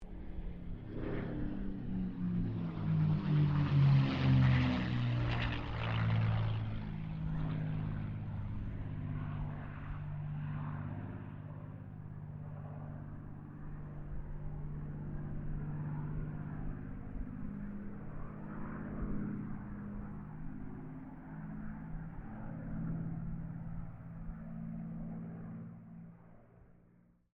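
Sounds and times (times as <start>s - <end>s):
distant CA-18 Mustang aircraft passing: 0.0s - 27.3s.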